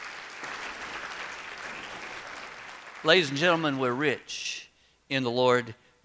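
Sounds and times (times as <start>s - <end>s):
room full of people clapping: 0.0s - 4.1s
speech: 3.0s - 6.0s.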